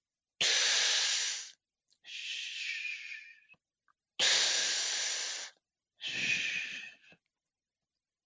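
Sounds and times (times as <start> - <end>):
person vocally imitating normal vesicular breath sounds through a stethoscope: 0.4 - 3.5, 4.2 - 7.2.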